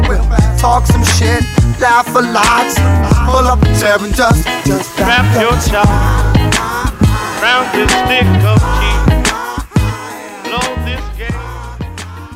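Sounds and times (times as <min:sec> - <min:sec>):
rap song with punchy beat and deep bass: 0:00.0 - 0:12.3
speech: 0:00.6 - 0:09.1.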